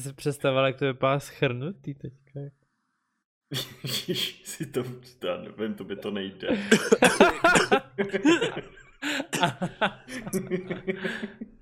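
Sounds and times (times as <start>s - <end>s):
speech: 0.0s - 2.6s, 3.5s - 11.6s
harsh coughing fit while laughing: 3.5s - 4.7s, 6.5s - 11.3s
person laughing: 3.5s - 4.9s, 6.5s - 11.5s.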